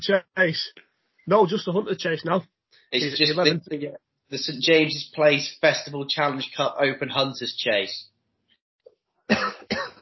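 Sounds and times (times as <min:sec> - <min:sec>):
speech: 0:00.0 - 0:08.1, 0:09.3 - 0:09.9
harsh coughs: 0:09.3 - 0:10.0.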